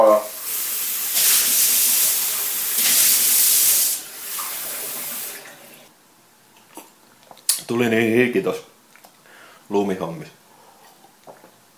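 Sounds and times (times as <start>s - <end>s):
water poured from a tap for a drink: 0.0s - 5.9s
speech: 7.7s - 8.7s, 9.7s - 10.4s.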